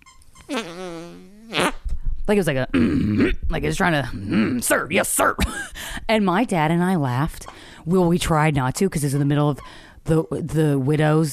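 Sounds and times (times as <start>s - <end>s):
speech: 0.5s - 1.3s, 2.3s - 11.3s
person vocally imitating a man's fart-like stomach growl: 0.5s - 1.9s, 2.7s - 4.8s.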